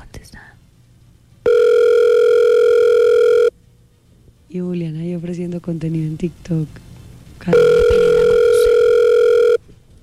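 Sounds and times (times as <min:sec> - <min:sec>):
steady electronic phone tone: 0:01.4 - 0:03.5, 0:07.5 - 0:09.6
speech: 0:04.5 - 0:08.1.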